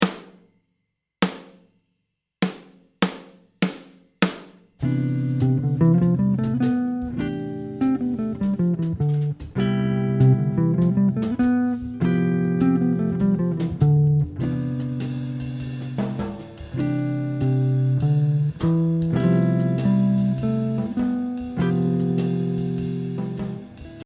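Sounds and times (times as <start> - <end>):
jazz guitar in Ionian mode in C: 4.8 - 24.0.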